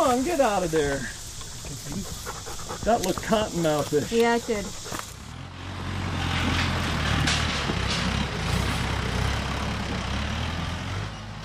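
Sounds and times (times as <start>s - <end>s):
big tractor diesel engine hauling logs into the woods at a mushroom farm: 0.0s - 11.4s
speech: 0.1s - 5.0s.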